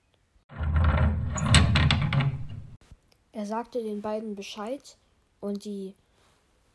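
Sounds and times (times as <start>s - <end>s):
gate scraping open with grinding creak: 0.5s - 2.8s
speech: 3.4s - 6.0s.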